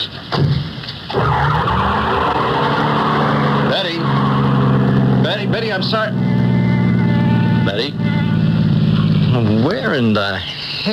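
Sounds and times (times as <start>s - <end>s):
car tire squeal: 1.1s - 9.6s
car engine revving hard as it pulls away quickly: 1.1s - 10.2s
speech: 5.8s - 6.2s, 9.6s - 10.9s.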